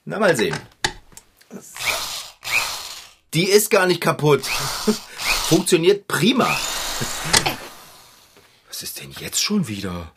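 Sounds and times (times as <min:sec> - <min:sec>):
speech: 0:00.1 - 0:00.7, 0:03.3 - 0:07.5, 0:08.8 - 0:10.1
electric drill whirring with a high-pitched whine: 0:01.8 - 0:03.2, 0:04.4 - 0:05.7, 0:06.5 - 0:08.4
laughter: 0:07.0 - 0:07.8.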